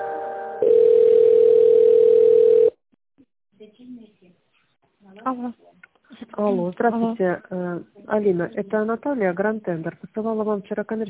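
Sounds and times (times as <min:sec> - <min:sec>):
telephone ringing tone while a call is put through: 0:00.6 - 0:02.8
speech: 0:06.4 - 0:11.0.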